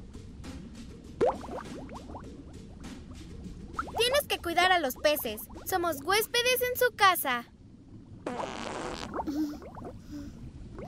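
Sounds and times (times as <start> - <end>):
gurgling wobbling bubbles rising and popping underwater: 1.2 - 2.2, 3.8 - 4.2, 4.8 - 5.8, 8.1 - 10.1, 10.7 - 10.8
speech: 4.8 - 7.5
loud rasping fart underwater from someone snorkeling: 8.2 - 10.0.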